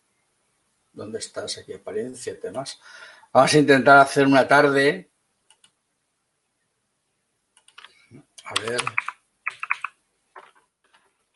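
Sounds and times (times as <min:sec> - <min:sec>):
speech: 0:01.0 - 0:05.1, 0:08.1 - 0:09.1
typing on a computer keyboard: 0:05.5 - 0:05.8, 0:07.6 - 0:10.6.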